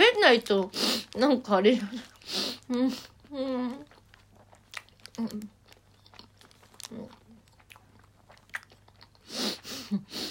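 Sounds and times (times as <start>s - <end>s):
speech: 0.3s - 3.9s, 5.2s - 5.6s, 9.9s - 10.2s
chewing and biting of food while eating: 2.0s - 9.3s.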